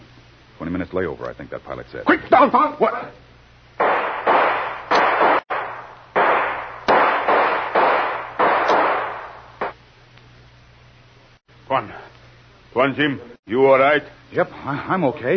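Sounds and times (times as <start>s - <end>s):
speech: 0.6s - 3.3s, 11.7s - 12.1s, 12.7s - 15.3s
gunshots between two airfield hangars: 3.8s - 9.8s.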